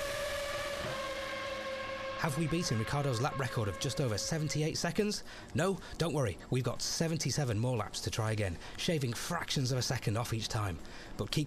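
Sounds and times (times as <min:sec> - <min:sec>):
Formula 1 race car engine at full throttle through the tunnel: 0:00.0 - 0:04.7
speech: 0:02.2 - 0:11.4.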